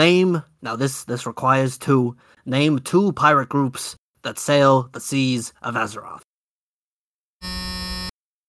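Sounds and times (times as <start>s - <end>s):
speech: 0.0s - 6.3s
harsh electronic quiz contestant game-show buzzer: 7.4s - 8.1s.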